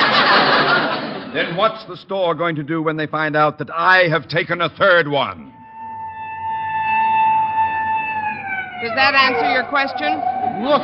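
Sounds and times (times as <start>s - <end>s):
laughter: 0.0s - 2.0s
speech: 1.4s - 5.6s, 8.8s - 10.8s
police car siren: 5.5s - 10.8s.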